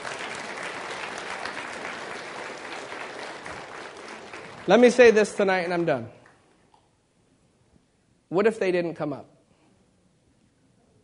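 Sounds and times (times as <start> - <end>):
crowd clapping in sustained applause: 0.0 - 6.1
speech: 4.7 - 6.2, 8.3 - 9.3.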